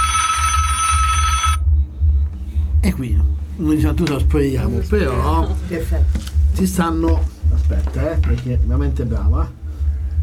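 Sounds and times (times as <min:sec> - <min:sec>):
mobile phone ringing beside someone sitting on a bench: 0:00.0 - 0:01.6
constant low hum: 0:00.0 - 0:10.2
speech: 0:02.9 - 0:09.6.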